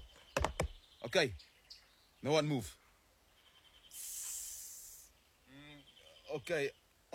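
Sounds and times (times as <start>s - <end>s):
speech: 1.1s - 1.5s, 2.2s - 2.8s, 6.3s - 7.1s
snake hissing: 3.9s - 5.2s.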